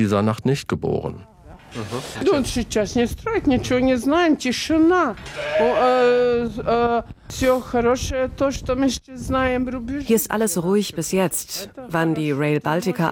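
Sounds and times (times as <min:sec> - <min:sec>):
speech: 0:00.0 - 0:13.1
many sheep bleating in a barn on a family farm: 0:05.3 - 0:06.0.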